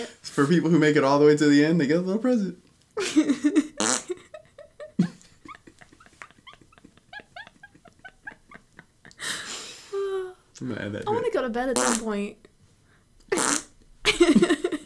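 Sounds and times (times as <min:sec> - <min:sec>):
speech: 0:00.0 - 0:04.0, 0:10.6 - 0:12.4
laughter: 0:03.0 - 0:10.2
person blowing a wet raspberry imitating a fart: 0:03.8 - 0:04.2, 0:11.8 - 0:12.0, 0:13.3 - 0:13.7.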